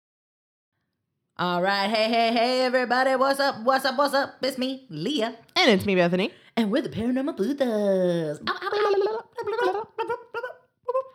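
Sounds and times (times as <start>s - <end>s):
speech: 1.4s - 10.2s
voices making rapid warbling gobbles: 8.3s - 11.1s.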